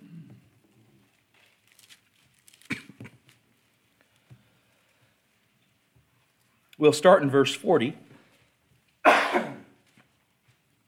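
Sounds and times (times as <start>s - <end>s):
harsh cough: 2.6s - 3.1s, 9.0s - 9.7s
speech: 6.8s - 8.0s.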